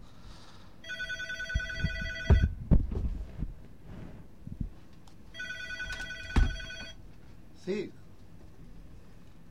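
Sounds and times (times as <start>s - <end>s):
telephone ringing with an incoming call: 0.8s - 2.6s, 5.3s - 7.0s
speech: 7.7s - 8.0s.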